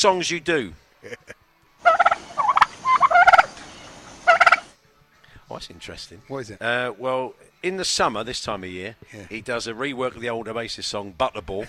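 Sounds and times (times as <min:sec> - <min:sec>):
speech: 0:00.0 - 0:01.3, 0:05.5 - 0:11.6
laughter: 0:01.0 - 0:01.4
turkey gobbling: 0:01.8 - 0:04.7.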